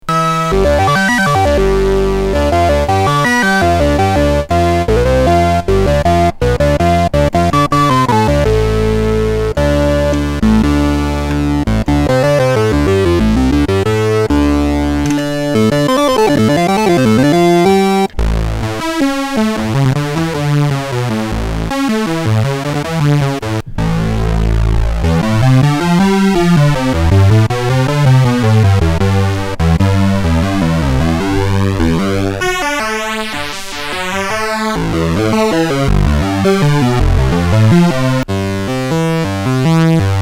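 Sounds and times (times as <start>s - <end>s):
Korg Mono Poly synthesizer: 0.0s - 40.2s.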